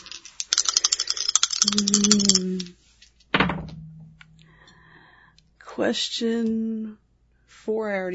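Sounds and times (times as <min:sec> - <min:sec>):
dice rattling and clattering: 0:00.0 - 0:03.2
short hum-like voice sound: 0:01.6 - 0:02.8
speech: 0:01.6 - 0:02.8, 0:05.8 - 0:07.0, 0:07.6 - 0:08.1.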